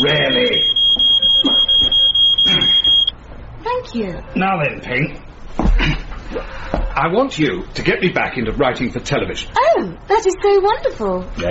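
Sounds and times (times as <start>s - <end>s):
smoke alarm set off by pipe smoke beeping: 0.0s - 3.2s
speech: 4.0s - 6.0s, 7.0s - 11.4s.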